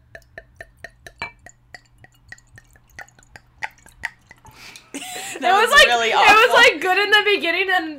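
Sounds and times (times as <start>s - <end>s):
wine glugging from a bottle into a glass: 0.0s - 4.8s
speech: 5.4s - 7.9s.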